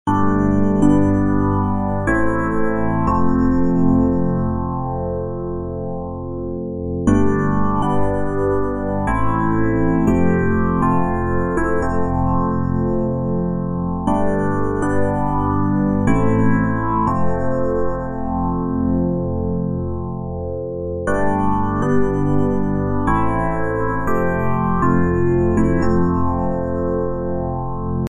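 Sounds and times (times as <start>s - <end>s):
electric piano: 0.1s - 28.0s.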